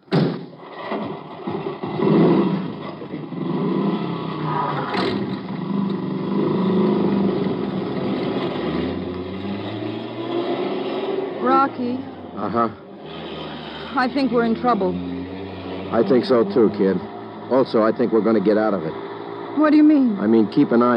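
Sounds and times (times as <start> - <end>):
car driving off with engine rumble: 0.0 - 20.9
speech: 11.8 - 12.8, 14.0 - 15.1, 15.9 - 19.0, 19.6 - 20.9.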